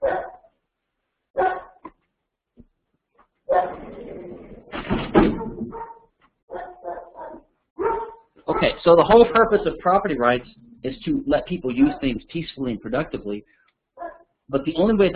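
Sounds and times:
poodle barking: 0.0s - 0.5s, 1.4s - 1.8s, 3.5s - 3.8s, 5.3s - 8.8s, 14.0s - 14.3s
speech: 8.6s - 13.6s, 14.5s - 15.1s.

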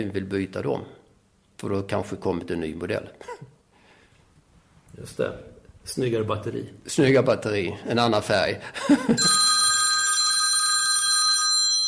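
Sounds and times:
speech: 0.0s - 1.0s, 1.6s - 3.6s, 4.9s - 9.5s
telephone with bright electronic ring: 9.2s - 11.8s.

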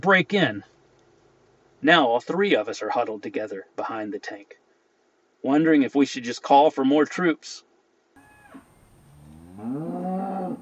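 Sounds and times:
speech: 0.0s - 0.7s, 1.8s - 4.6s, 5.4s - 7.7s, 9.6s - 10.6s
cow mooing: 8.2s - 10.6s.

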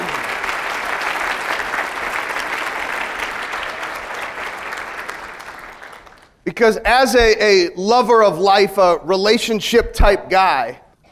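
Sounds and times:
audience applauding: 0.0s - 6.4s
speech: 6.5s - 11.1s.

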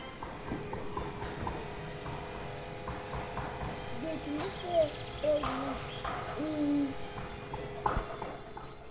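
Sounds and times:
steady outdoor noise: 0.0s - 8.9s
faint distant wooden knocks: 0.2s - 8.9s
birds giving low hooting coos outdoors: 3.7s - 8.9s.

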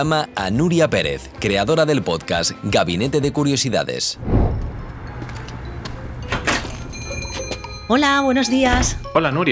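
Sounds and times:
speech: 0.0s - 4.6s, 7.9s - 9.5s
shop door swinging open: 4.3s - 7.6s.

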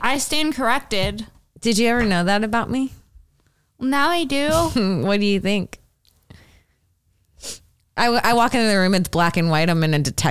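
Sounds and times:
speech: 0.1s - 3.0s, 3.8s - 5.8s, 7.4s - 10.2s
sudden sharp sneeze: 4.5s - 5.0s
quiet breathing: 6.2s - 7.7s.

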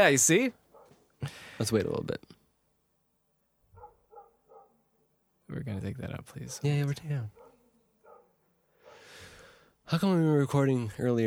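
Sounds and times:
speech: 0.0s - 0.6s, 1.2s - 2.4s, 5.5s - 7.4s, 9.9s - 11.2s
dog barking: 0.6s - 1.0s, 3.7s - 5.2s, 6.4s - 9.1s.

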